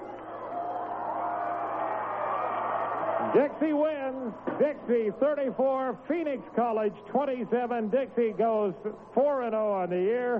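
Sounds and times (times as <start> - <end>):
football stadium crowd cheering and shouting at game end: 0.0 - 10.3
speech: 3.2 - 10.3.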